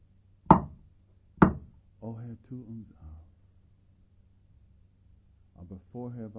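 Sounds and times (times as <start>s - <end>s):
knocking on a door: 0.5s - 0.8s, 1.4s - 1.7s
speech: 2.4s - 3.3s, 5.6s - 6.3s.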